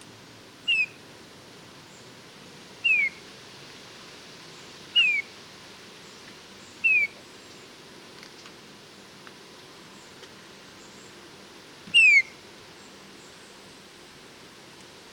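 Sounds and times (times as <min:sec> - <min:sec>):
steady low background noise: 0:00.0 - 0:15.1
Eurasian bullfinch Pyrrhula pyrrhula mellow downslurred piping whistle: 0:00.6 - 0:01.0, 0:02.8 - 0:03.2, 0:04.9 - 0:05.3, 0:06.8 - 0:07.2, 0:11.9 - 0:12.4.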